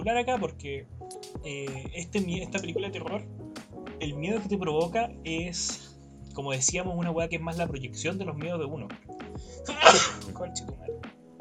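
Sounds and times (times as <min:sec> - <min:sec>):
speech: 0:00.0 - 0:03.4, 0:04.0 - 0:11.2
person sneezing: 0:09.7 - 0:10.4.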